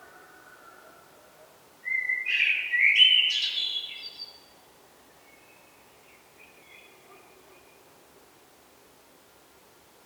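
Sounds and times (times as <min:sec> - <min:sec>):
Eurasian blackbird Turdus merula singing: 0:01.9 - 0:04.4.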